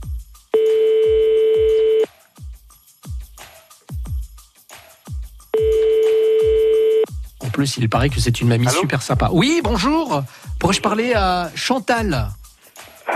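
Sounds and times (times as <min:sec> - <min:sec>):
steady rhythmic thumping beat: 0:00.0 - 0:13.1
telephone ringback tone as a call is placed: 0:00.6 - 0:02.1, 0:05.6 - 0:07.0
speech: 0:07.6 - 0:12.4.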